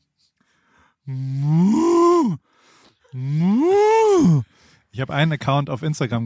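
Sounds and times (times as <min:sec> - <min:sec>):
speech: 0:01.1 - 0:01.4, 0:05.0 - 0:06.2
person imitating a cow mooing: 0:01.1 - 0:02.4, 0:03.1 - 0:04.4.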